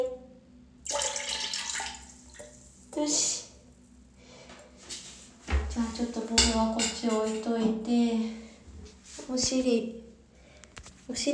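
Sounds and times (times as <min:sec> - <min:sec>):
toilet flushing away collected urine: 0:00.8 - 0:03.4
speech: 0:03.0 - 0:03.4, 0:06.0 - 0:08.4, 0:09.3 - 0:10.0, 0:11.1 - 0:11.3.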